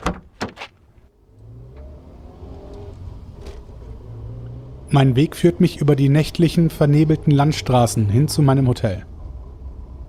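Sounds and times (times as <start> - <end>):
car door opening and slamming shut: 0.0 - 0.7
car engine starting: 0.8 - 10.0
speech: 4.9 - 9.1.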